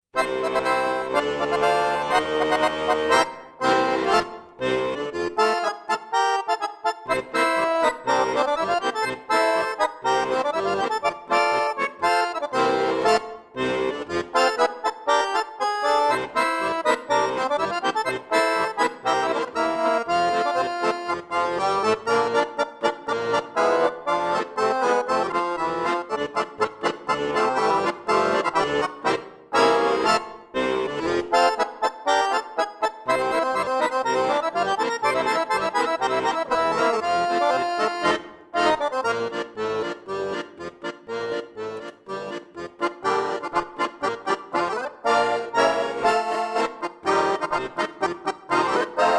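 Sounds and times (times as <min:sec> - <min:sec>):
German polka on accordion: 0:00.0 - 0:49.1.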